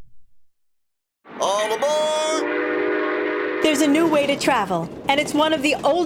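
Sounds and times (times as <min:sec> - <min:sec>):
deep low rumble of train passing: 0:01.3 - 0:06.0
loud brassy train horn blaring: 0:01.6 - 0:04.4
speech: 0:03.9 - 0:06.0.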